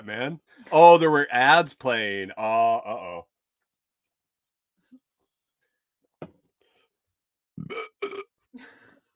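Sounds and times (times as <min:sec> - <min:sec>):
speech: 0:00.0 - 0:03.3, 0:07.6 - 0:08.8
loud raspy guttural burp: 0:07.6 - 0:08.3.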